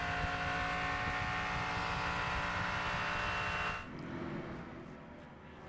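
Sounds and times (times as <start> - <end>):
Cadillac prototype race car engine revving: 0.0 - 4.6.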